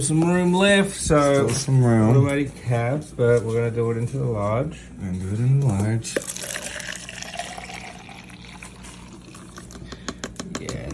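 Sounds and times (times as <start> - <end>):
speech: 0.0 - 6.6
liquid pouring from one cup into a larger cup: 6.2 - 10.1.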